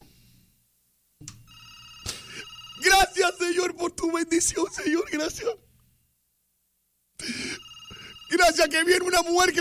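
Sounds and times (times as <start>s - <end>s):
telephone ringing: 1.5s - 3.8s, 7.2s - 9.5s
speech: 3.2s - 5.7s, 8.4s - 9.5s.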